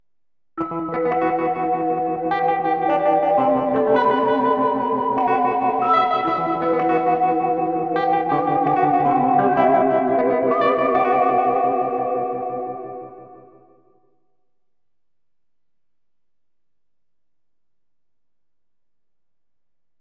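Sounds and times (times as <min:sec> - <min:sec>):
1960s sci-fi guitar: 0:00.6 - 0:13.6.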